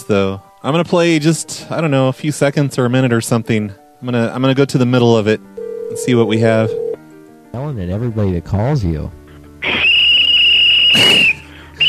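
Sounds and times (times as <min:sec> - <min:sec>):
speech: 0:00.1 - 0:06.8, 0:07.5 - 0:09.2, 0:10.9 - 0:11.4
whistle blown in a long sustained blast: 0:09.6 - 0:11.8.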